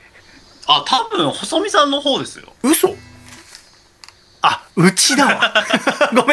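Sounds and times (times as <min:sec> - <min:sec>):
speech: 0:00.7 - 0:03.1, 0:04.8 - 0:06.3
cicadas buzzing outside a home: 0:00.8 - 0:04.8
sharp high-pitched pulses: 0:02.8 - 0:03.6
laughter: 0:05.3 - 0:06.3.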